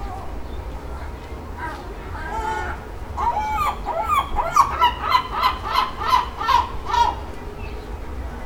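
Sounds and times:
seagull calling: 0:01.6 - 0:07.3.

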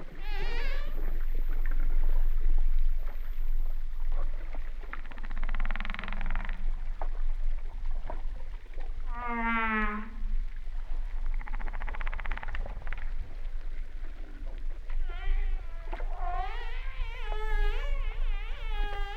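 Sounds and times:
humpback whale song: 0:00.0 - 0:19.1.

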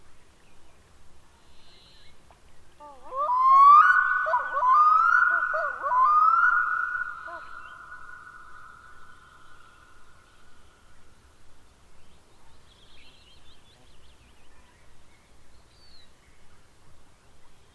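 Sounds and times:
Arctic diver calling: 0:02.8 - 0:09.0.

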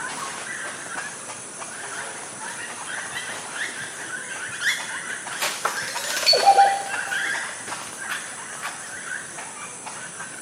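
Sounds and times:
insect-like background buzz: 0:00.0 - 0:10.4
oropendola singing: 0:05.8 - 0:07.4.

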